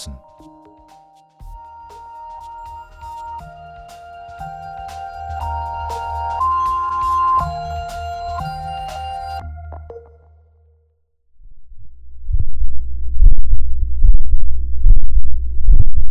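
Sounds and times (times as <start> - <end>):
tonal chime: 1.5 - 10.1
low rumble: 11.3 - 16.0
human heartbeat recorded by fabric microphone in a vest: 11.8 - 16.0.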